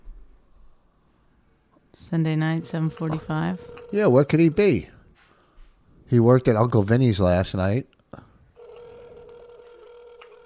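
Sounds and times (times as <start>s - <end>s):
speech: 2.0s - 5.0s, 6.1s - 8.2s
electronic ringback tone on a phone line: 2.4s - 5.0s, 8.6s - 10.4s.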